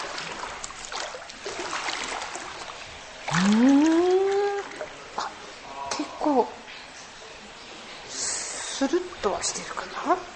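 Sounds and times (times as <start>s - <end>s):
water sloshing as someone lowers into a sulphur hot spring bath: 0.0s - 5.6s
speech: 3.4s - 3.8s, 8.9s - 10.3s.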